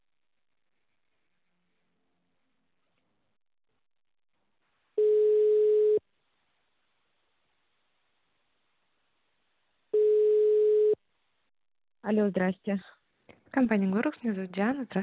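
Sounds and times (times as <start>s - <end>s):
telephone ringback tone while connecting a call: 5.0s - 6.0s, 10.0s - 11.0s
speech: 12.1s - 15.0s.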